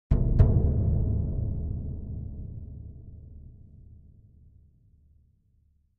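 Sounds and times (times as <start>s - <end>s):
deep tom drum hits: 0.1s - 4.1s.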